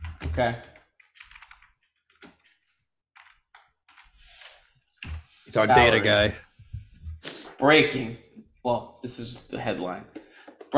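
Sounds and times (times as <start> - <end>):
typing on a computer keyboard: 0.0 - 2.4, 3.2 - 4.2
speech: 0.4 - 0.7, 5.5 - 6.5, 7.6 - 10.7.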